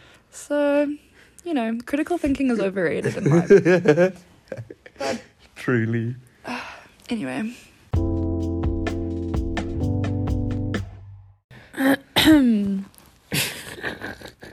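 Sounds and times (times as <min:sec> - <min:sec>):
speech: 0:00.4 - 0:08.1, 0:11.8 - 0:12.9
tonal music: 0:08.0 - 0:11.4
person coughing: 0:11.8 - 0:12.6.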